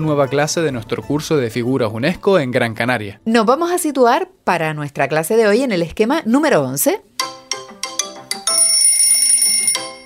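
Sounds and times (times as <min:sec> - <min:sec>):
speech: 0:00.0 - 0:07.1
telephone ringing with electronic bell tone: 0:08.3 - 0:10.0.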